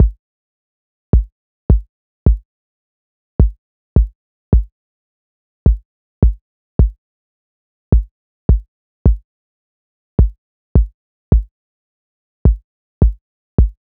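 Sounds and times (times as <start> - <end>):
kick drum at 106 bpm: 0.0 - 0.2, 1.2 - 2.4, 3.4 - 4.7, 5.7 - 7.0, 7.9 - 9.2, 10.2 - 11.5, 12.5 - 13.8.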